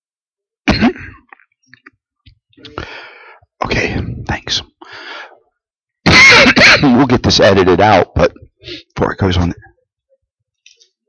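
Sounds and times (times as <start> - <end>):
speaker coughing during a sermon: 0.7 - 1.4, 6.1 - 7.1
speaker clearing throat: 0.7 - 1.5
speech: 2.6 - 4.7, 6.8 - 9.7.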